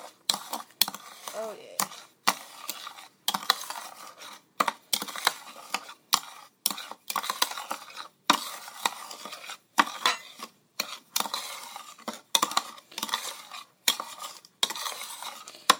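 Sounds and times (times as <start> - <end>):
salts being stirred into sweet almond oil: 0.0 - 15.7
speech: 1.4 - 1.8.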